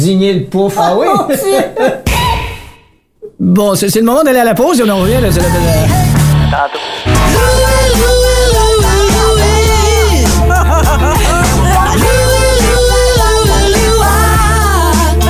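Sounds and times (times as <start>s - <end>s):
speech: 0.0s - 2.0s, 3.4s - 8.9s
laughter: 0.8s - 2.1s, 10.0s - 12.6s
entrance music track with steady bass line and melodic lead: 5.0s - 15.2s.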